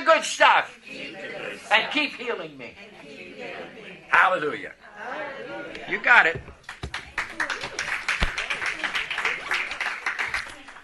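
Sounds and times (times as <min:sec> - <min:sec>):
speech: 0:00.2 - 0:06.6
audience clapping: 0:06.5 - 0:10.8.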